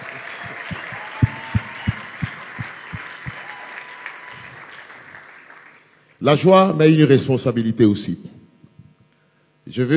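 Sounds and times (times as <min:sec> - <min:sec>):
rhythmic claps: 0:00.0 - 0:06.1
church congregation applauding and acclaiming: 0:00.0 - 0:06.4
speech: 0:06.2 - 0:08.4, 0:09.7 - 0:09.9.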